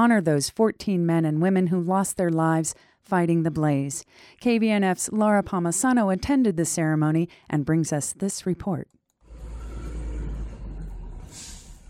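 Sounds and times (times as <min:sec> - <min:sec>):
speech: 0:00.0 - 0:09.0
fire truck and emergency vehicle engines rumbling in procession: 0:09.3 - 0:11.8
air brake hiss: 0:11.3 - 0:11.8.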